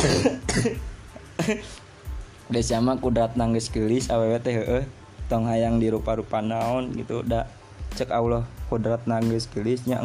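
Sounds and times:
person coughing harshly: 0:00.0 - 0:01.8
speech: 0:00.0 - 0:01.8, 0:02.5 - 0:10.0.

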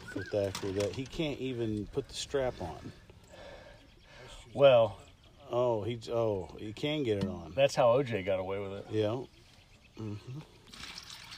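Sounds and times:
speech: 0:00.2 - 0:03.0, 0:04.5 - 0:09.4, 0:10.0 - 0:10.9
short vocal murmur: 0:10.0 - 0:10.6
liquid splashing and trickling while mixing a drink: 0:10.5 - 0:11.3.

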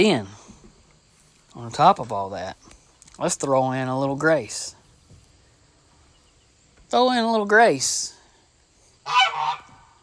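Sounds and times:
speech: 0:00.0 - 0:00.4, 0:01.6 - 0:04.8, 0:06.9 - 0:08.2
goose honking: 0:09.0 - 0:10.0.

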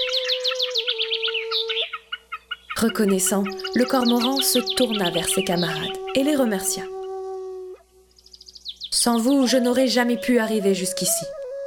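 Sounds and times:
several birds chirping and squawking: 0:00.0 - 0:07.3, 0:08.1 - 0:09.5
speech: 0:02.8 - 0:07.0, 0:09.0 - 0:11.4.

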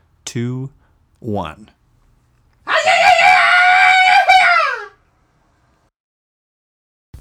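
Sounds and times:
speech: 0:00.3 - 0:01.8
group screaming together: 0:02.7 - 0:05.0.

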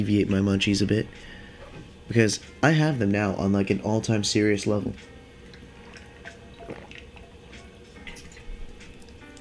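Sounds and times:
speech: 0:00.0 - 0:01.4, 0:02.1 - 0:05.1
water sloshing and dripping in a large water bottle: 0:04.9 - 0:09.3
person gulping water from a large water bottle: 0:05.8 - 0:07.3.

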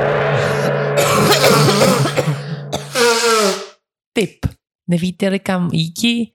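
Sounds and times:
harsh raspy coughing: 0:00.6 - 0:03.7
speech: 0:04.2 - 0:06.3.

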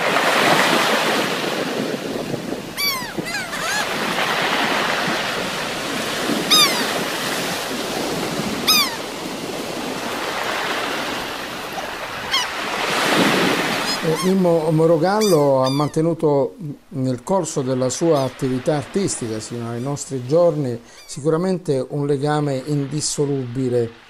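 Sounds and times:
wind buffeting the microphone: 0:00.0 - 0:15.6
sea waves breaking on shore: 0:00.0 - 0:16.0, 0:16.8 - 0:24.0
bird calls: 0:02.7 - 0:04.6, 0:06.4 - 0:07.5, 0:08.5 - 0:09.2, 0:10.0 - 0:12.9, 0:13.7 - 0:16.0, 0:20.8 - 0:21.2
speech: 0:14.4 - 0:24.0.

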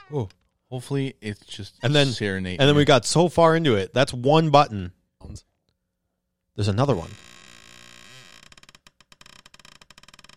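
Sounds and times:
speech: 0:00.1 - 0:05.5, 0:06.6 - 0:07.4
chair creaking: 0:07.0 - 0:10.3.

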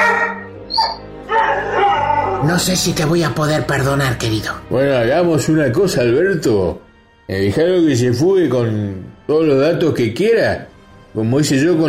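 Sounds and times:
dog barking and yipping with whiny vocalizing: 0:00.0 - 0:02.5
speech: 0:00.8 - 0:01.8, 0:02.4 - 0:11.8.

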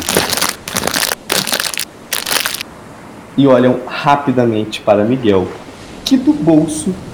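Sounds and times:
small pack of biscuits crunching and crinkling: 0:00.0 - 0:02.6
speech: 0:03.4 - 0:07.1.

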